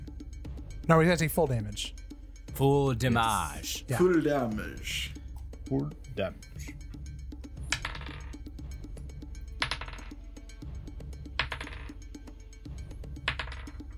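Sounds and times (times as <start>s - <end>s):
speech: 0.9s - 2.0s, 2.6s - 6.8s
handfuls of dice rolled for damage in a tabletop game: 7.6s - 8.6s, 9.6s - 10.2s, 11.3s - 12.1s, 13.2s - 13.9s.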